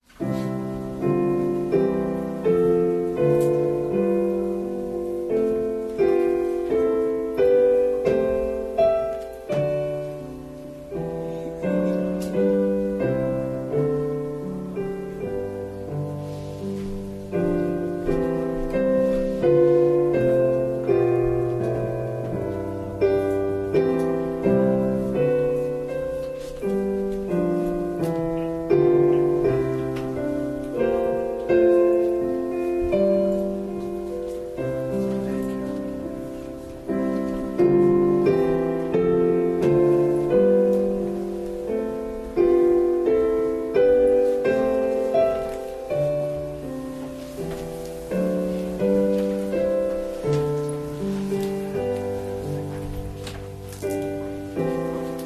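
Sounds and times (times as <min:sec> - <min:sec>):
piano prelude: 0:00.0 - 0:55.2.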